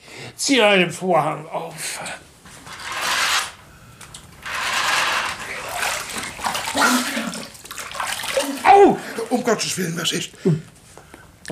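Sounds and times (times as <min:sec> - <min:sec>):
speech: 0:00.4 - 0:02.3, 0:08.8 - 0:10.8
water splashing as someone washes their face: 0:04.4 - 0:10.0
water dripping: 0:05.4 - 0:09.8.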